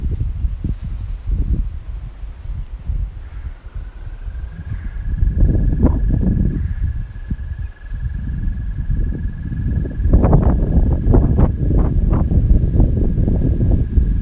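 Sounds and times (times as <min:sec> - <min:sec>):
heavy low rumbling noise: 0:00.0 - 0:14.2
American toad Anaxyrus americanus trilling in Maryland, USA: 0:03.2 - 0:11.2.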